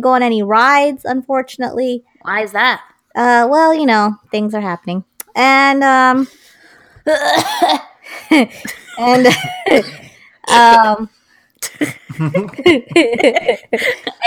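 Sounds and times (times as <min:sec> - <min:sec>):
speech: 0:00.0 - 0:06.4, 0:07.1 - 0:14.2
people coughing deliberately and exaggeratedly: 0:07.1 - 0:08.0, 0:08.6 - 0:10.2
laughter: 0:08.3 - 0:09.8, 0:11.8 - 0:14.2.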